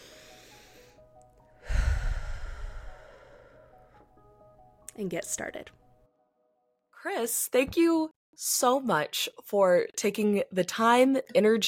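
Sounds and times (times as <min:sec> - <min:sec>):
deep breath drawn and let out: 0:00.0 - 0:01.0, 0:01.6 - 0:04.1
speech: 0:05.0 - 0:05.8, 0:07.0 - 0:11.6.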